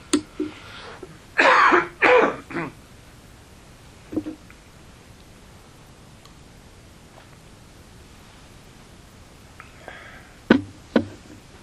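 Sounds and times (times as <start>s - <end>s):
person clearing throat: 1.4s - 2.8s.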